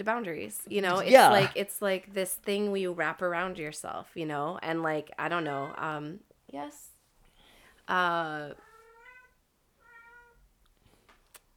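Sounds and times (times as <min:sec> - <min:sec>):
speech: 0:00.0 - 0:06.9, 0:07.9 - 0:08.7
cat meowing: 0:08.6 - 0:10.4.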